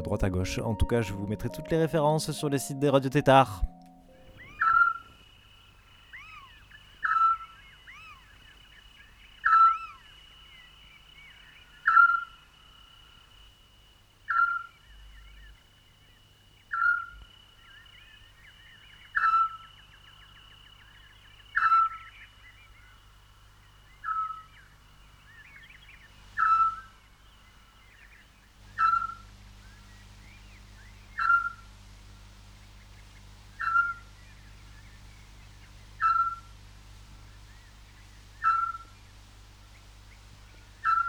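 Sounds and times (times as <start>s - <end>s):
speech: 0.0s - 3.7s
faint night ambience: 0.0s - 41.0s
Eurasian scops owl whistled call: 4.3s - 5.1s, 6.1s - 8.3s, 9.4s - 10.0s, 14.3s - 14.7s, 16.7s - 17.1s, 19.1s - 19.7s, 24.0s - 24.5s, 26.4s - 26.9s, 28.7s - 29.2s, 31.2s - 31.7s, 33.5s - 34.2s, 36.0s - 36.5s, 38.4s - 38.9s, 40.8s - 41.0s
high insect drone: 4.4s - 41.0s.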